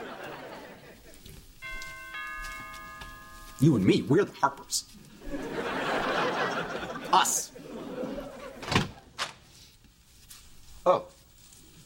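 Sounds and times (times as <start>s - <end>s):
laughter: 0.0s - 1.4s, 5.1s - 9.2s
rustling noise: 0.8s - 6.5s, 8.3s - 11.8s
doorbell chime: 1.6s - 4.7s
speech: 3.6s - 5.0s, 7.1s - 7.5s, 10.9s - 11.1s.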